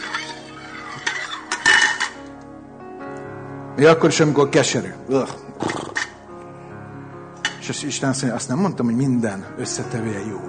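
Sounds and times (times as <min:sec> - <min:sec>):
metal cooking pot clanking and scraping: 0:00.0 - 0:02.4
speech: 0:03.8 - 0:05.8, 0:07.7 - 0:10.4.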